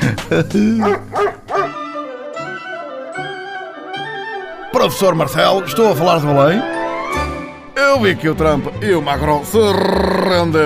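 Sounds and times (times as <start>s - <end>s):
speech: 0.3s - 1.3s, 4.8s - 6.8s, 7.8s - 10.6s
dog barking: 0.8s - 1.8s.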